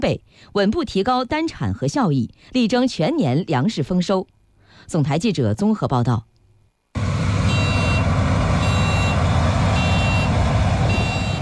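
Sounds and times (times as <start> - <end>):
speech: 0.0 - 6.3
driverless combine harvesters engine roar in a farm field in Heilongjiang, China: 7.0 - 11.4
high warning beeps of driverless combine harvesters: 7.4 - 11.4.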